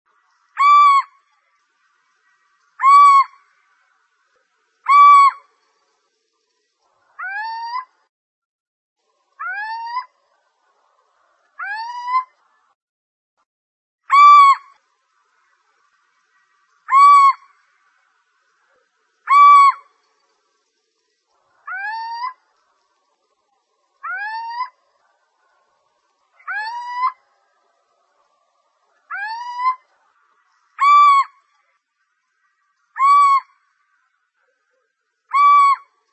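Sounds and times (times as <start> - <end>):
little owl calling: 0.6 - 1.2, 2.2 - 3.4, 4.8 - 5.5, 7.2 - 7.9, 9.4 - 10.2, 11.6 - 12.3, 14.1 - 14.8, 16.9 - 17.5, 18.7 - 19.9, 21.6 - 22.4, 24.0 - 25.1, 26.4 - 27.2, 29.0 - 31.4, 32.9 - 33.6, 35.3 - 36.0.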